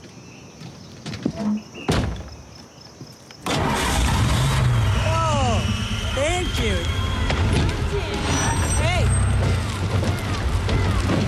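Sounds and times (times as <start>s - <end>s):
speech: 1.4s - 1.8s
car engine starting: 3.4s - 11.2s.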